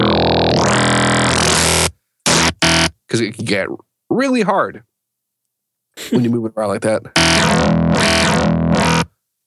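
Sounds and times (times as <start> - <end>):
buzzy FM synthesizer bass tone: 0.0 - 3.0, 7.2 - 9.1
speech: 3.1 - 4.9, 6.0 - 8.5.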